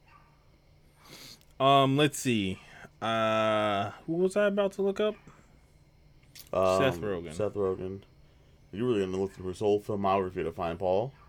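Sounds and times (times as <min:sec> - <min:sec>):
faint bark of a next-door neighbor's dog: 0:00.0 - 0:00.6, 0:05.0 - 0:05.7, 0:11.0 - 0:11.2
low background hum: 0:00.0 - 0:11.2
speech: 0:01.6 - 0:05.3, 0:06.5 - 0:08.1, 0:08.7 - 0:11.2.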